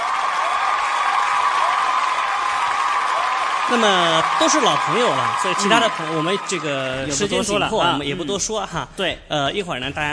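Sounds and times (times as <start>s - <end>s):
audience applause for the judges at a contest: 0.0s - 8.1s
speech: 3.7s - 10.1s.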